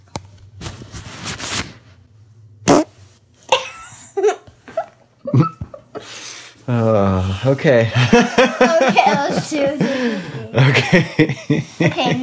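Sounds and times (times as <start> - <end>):
farting: 2.7 - 2.9
speech: 6.7 - 12.2
laughter: 7.9 - 12.2.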